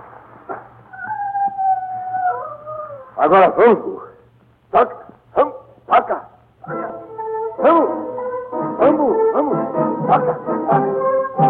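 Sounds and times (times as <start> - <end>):
low steady hum: 0.0 - 11.4
mortally wounded dog crying after being shot: 0.5 - 3.3, 5.4 - 8.2
speech: 3.2 - 4.1, 4.7 - 5.0.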